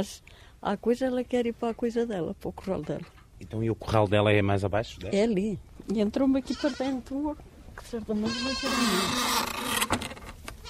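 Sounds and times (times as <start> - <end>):
speech: 0.0 - 10.0
steady outdoor rustle: 0.0 - 10.6
goats bleating: 6.4 - 7.0, 8.2 - 9.2.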